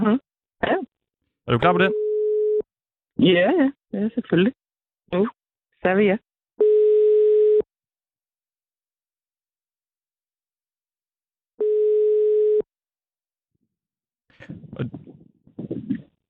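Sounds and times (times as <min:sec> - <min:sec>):
speech: 0:01.5 - 0:02.0, 0:03.2 - 0:06.3, 0:14.5 - 0:15.0
telephone ringback tone while placing a call: 0:01.8 - 0:02.6, 0:06.6 - 0:07.6, 0:11.6 - 0:12.6.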